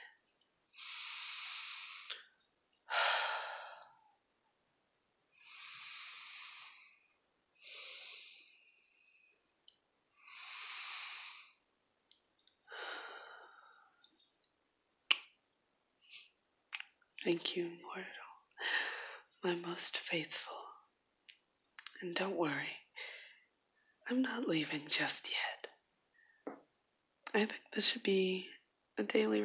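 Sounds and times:
slow relaxed breathing: 0:00.0 - 0:04.2, 0:05.3 - 0:09.5, 0:10.1 - 0:11.7, 0:12.7 - 0:14.2, 0:18.6 - 0:19.4, 0:23.0 - 0:23.9
speech: 0:17.2 - 0:18.2, 0:19.4 - 0:20.5, 0:22.0 - 0:22.8, 0:24.1 - 0:25.6, 0:27.3 - 0:29.4.

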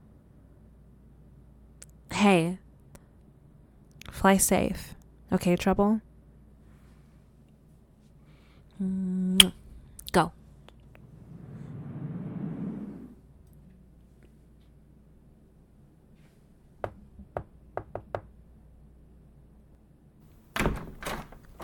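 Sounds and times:
speech: 0:02.2 - 0:02.6, 0:04.2 - 0:06.1, 0:08.8 - 0:10.4
door slamming shut: 0:20.5 - 0:21.6
wooden knocks and clunks: 0:20.5 - 0:21.6.

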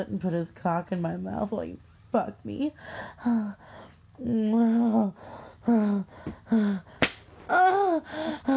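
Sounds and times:
speech: 0:00.0 - 0:08.5
woman's breathy gasps: 0:02.8 - 0:08.5
woman's drawn-out vocal sounds: 0:03.1 - 0:03.6, 0:04.2 - 0:08.5
hand spanking bare skin: 0:07.0 - 0:07.3.

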